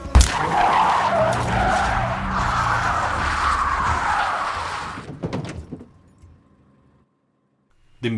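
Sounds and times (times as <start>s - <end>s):
speeding car tires screeching in a skid: 0.0s - 5.2s
car knocks and rattles as it comes to rest: 4.9s - 6.5s.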